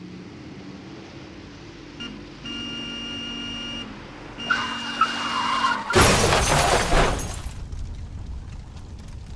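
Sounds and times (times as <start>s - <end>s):
tires screeching: 2.5s - 7.9s
car crash: 5.5s - 8.0s
debris clattering and shattering: 5.9s - 9.1s.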